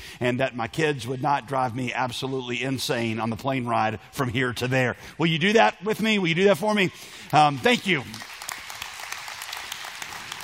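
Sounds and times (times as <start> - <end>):
speech: 0.2 - 8.3
audience clapping: 7.2 - 10.4.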